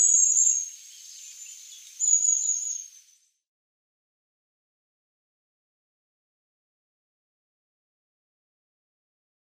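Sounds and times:
long-tailed tit giving very high thin drawn-out calls: 0:00.0 - 0:03.0.

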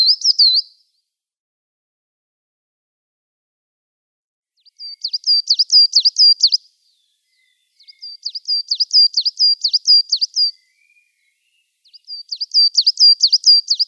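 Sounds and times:
Coal Tit song: 0:00.0 - 0:00.8, 0:04.6 - 0:13.8.

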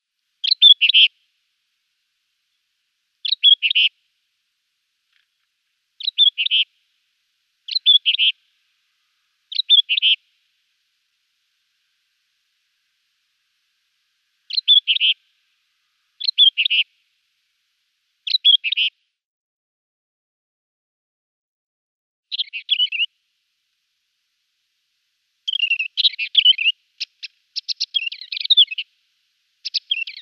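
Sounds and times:
Scrub Warbler singing: 0:00.4 - 0:01.1, 0:03.2 - 0:03.9, 0:06.0 - 0:06.7, 0:07.7 - 0:08.4, 0:09.5 - 0:10.2, 0:14.5 - 0:15.2, 0:16.2 - 0:16.9, 0:18.2 - 0:18.9, 0:22.3 - 0:23.1, 0:25.5 - 0:28.9, 0:29.6 - 0:30.2.

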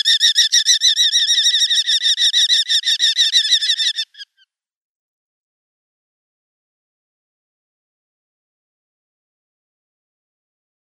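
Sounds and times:
Eurasian hobby nestling squealing calls: 0:00.0 - 0:04.4.

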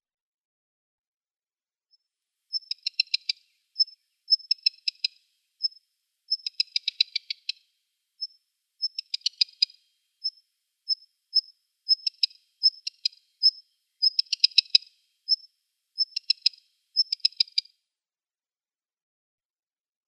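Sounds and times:
black redstart calling: 0:02.5 - 0:07.6, 0:08.2 - 0:17.7.

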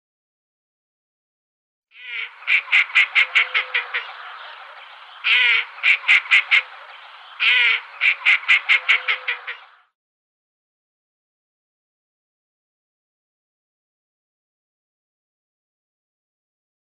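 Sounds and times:
female Northern Pintail: 0:02.0 - 0:09.9.

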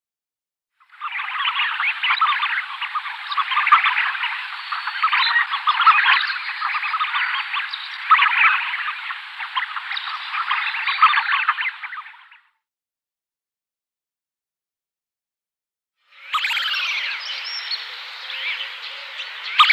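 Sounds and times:
male tufted ducks calling in a chattering chorus: 0:01.0 - 0:12.3, 0:16.4 - 0:19.7.

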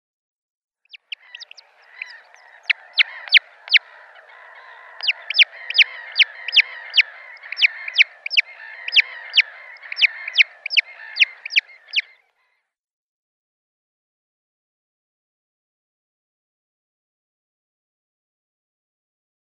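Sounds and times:
Red-necked Grebe downy young calling: 0:00.9 - 0:12.2.

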